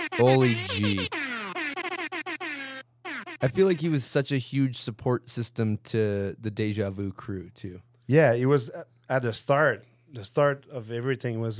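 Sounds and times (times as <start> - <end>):
air horn sound effect blasts: 0.0 - 3.5
speech: 0.2 - 1.2, 3.4 - 11.5.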